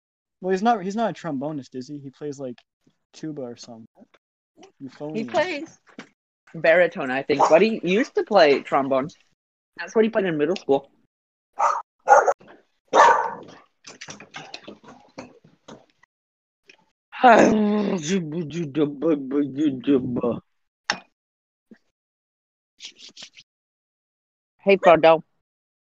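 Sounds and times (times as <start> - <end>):
speech: 0.4 - 11.0, 17.2 - 20.5, 24.6 - 25.3
dog barking: 7.4 - 7.7, 11.6 - 13.6.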